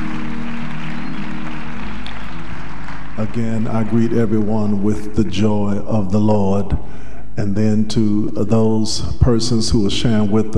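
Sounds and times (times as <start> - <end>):
audience clapping loudly: 0.0 - 5.2
low sustained musical tone: 0.0 - 5.2
speech: 3.2 - 10.5.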